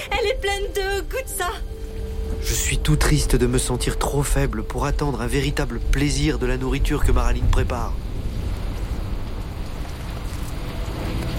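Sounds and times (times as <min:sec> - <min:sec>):
rain falling: 0:00.0 - 0:11.3
speech: 0:00.4 - 0:01.8, 0:02.4 - 0:08.2.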